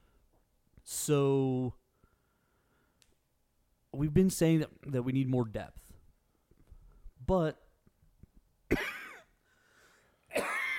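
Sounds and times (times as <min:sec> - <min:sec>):
speech: 0:00.8 - 0:01.8, 0:03.9 - 0:05.8, 0:07.2 - 0:07.6
person coughing from a cold: 0:08.7 - 0:09.4, 0:10.3 - 0:10.7.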